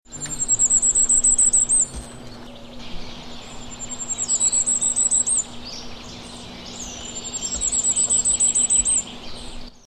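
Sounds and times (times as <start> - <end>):
firecrest singing: 0.1 - 9.8.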